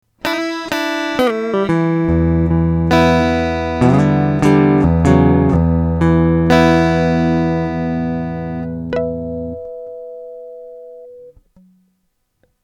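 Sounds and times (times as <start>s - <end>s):
electric guitar with passive pickups: 0.2s - 11.4s.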